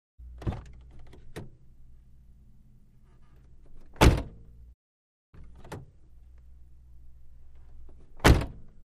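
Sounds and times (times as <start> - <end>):
1987 Chevy Corsica car door opening and closing: 0.3 - 1.6, 3.6 - 4.4, 5.4 - 6.0, 7.8 - 8.8.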